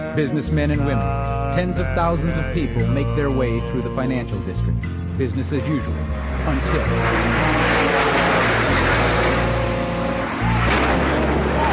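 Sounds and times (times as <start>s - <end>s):
speech: 0.2s - 8.0s
low-flying airplane roaring overhead: 5.6s - 11.7s.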